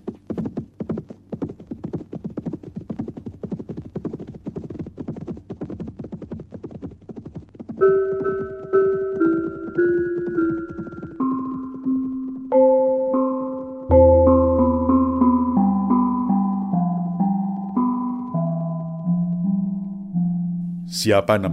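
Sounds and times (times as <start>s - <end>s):
horse hooves clip-clopping at a brisk trot: 0.0s - 13.7s
sustained tonal sound: 7.8s - 20.9s
speech: 21.0s - 21.5s.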